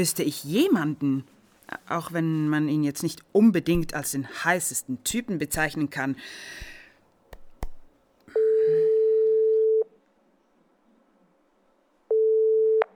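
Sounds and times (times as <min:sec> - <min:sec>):
speech: 0:00.0 - 0:06.7
brief rustling: 0:00.1 - 0:04.1
telephone ringback tone before call connects: 0:08.4 - 0:09.9.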